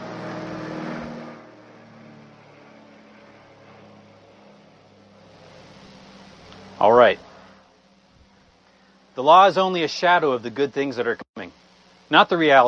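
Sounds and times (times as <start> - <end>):
airplane engine drone passing overhead: 0.0 - 12.6
speech: 6.8 - 7.3, 9.2 - 12.6.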